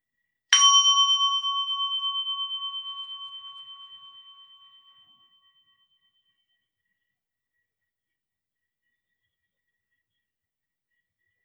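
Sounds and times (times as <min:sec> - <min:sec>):
meditation bell struck and ringing: 0:00.6 - 0:05.5.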